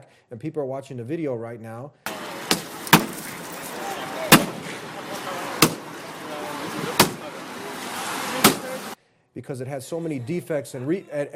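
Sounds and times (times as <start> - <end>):
speech: 0.3 - 2.2, 9.4 - 11.3
faint voices murmuring: 2.1 - 9.0
heavy metallic impacts of someone smashing a car: 2.4 - 3.5, 5.6 - 5.9, 6.9 - 7.2.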